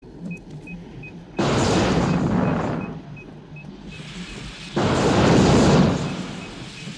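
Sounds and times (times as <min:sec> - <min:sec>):
flamethrower: 0:01.4 - 0:03.2, 0:03.8 - 0:06.9.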